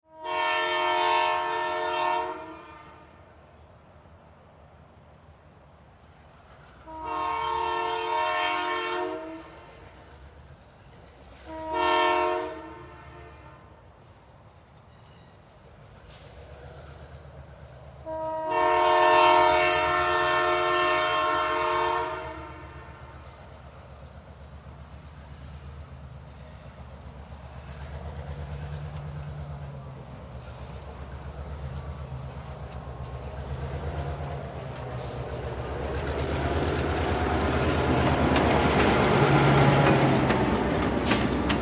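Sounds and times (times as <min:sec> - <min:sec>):
train passing by: 0:00.0 - 0:41.6
train whistle blowing: 0:00.1 - 0:03.2, 0:06.9 - 0:09.7, 0:11.4 - 0:13.7, 0:18.1 - 0:23.2.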